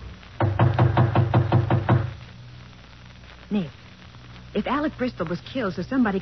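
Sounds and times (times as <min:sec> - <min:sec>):
knocking on a partly open wooden apartment door: 0:00.4 - 0:02.1
speech: 0:03.5 - 0:03.8, 0:04.6 - 0:06.2.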